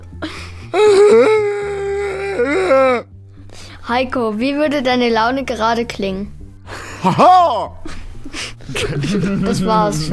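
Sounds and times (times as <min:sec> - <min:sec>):
man's voice imitating someone crying in a sound-imitation game: 0:00.7 - 0:03.1, 0:07.0 - 0:07.9
speech: 0:03.9 - 0:06.4, 0:07.0 - 0:08.0, 0:08.7 - 0:10.1
laughter: 0:06.7 - 0:10.1.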